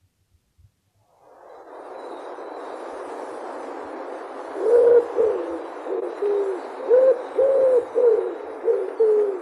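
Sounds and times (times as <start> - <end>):
quiet hiss: 0.0 - 9.4
common wood pigeon cooing: 4.6 - 9.4.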